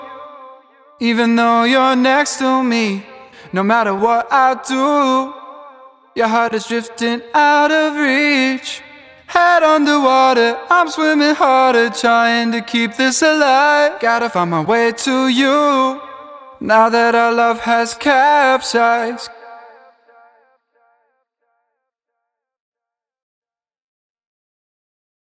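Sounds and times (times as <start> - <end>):
voice with delay and reverb: 1.0 - 19.8.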